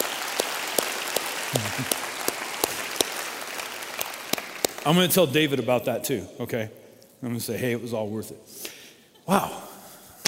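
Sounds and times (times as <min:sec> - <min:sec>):
congregation applauding in a large room: 0:00.0 - 0:05.2
speech: 0:01.5 - 0:02.0, 0:04.8 - 0:08.6, 0:09.3 - 0:09.6.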